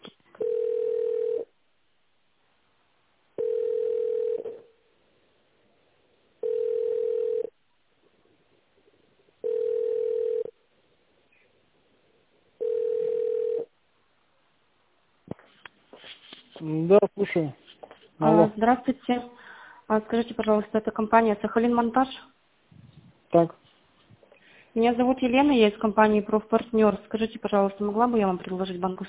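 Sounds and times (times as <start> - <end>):
telephone ringing tone while a call is transferred: 0.4 - 1.5, 3.4 - 4.7, 6.4 - 7.6, 9.4 - 10.6, 12.6 - 13.7
speech: 16.6 - 17.6, 18.2 - 22.3, 23.3 - 23.6, 24.8 - 29.0.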